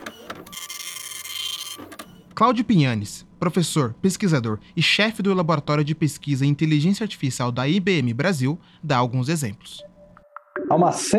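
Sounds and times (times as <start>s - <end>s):
printer whirring: 0.0s - 2.4s
speech: 2.4s - 9.9s, 10.7s - 11.1s.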